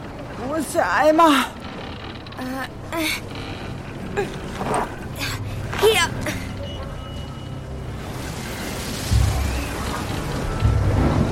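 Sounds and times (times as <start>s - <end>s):
speech: 0.4s - 1.6s, 2.4s - 3.5s, 4.2s - 6.4s
rain from a storm at sea: 7.7s - 11.2s.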